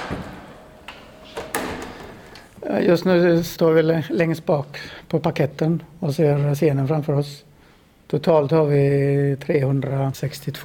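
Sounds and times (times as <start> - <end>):
door opening backstage in a theatre: 0.0 - 2.7
speech: 2.7 - 7.5, 8.1 - 10.6.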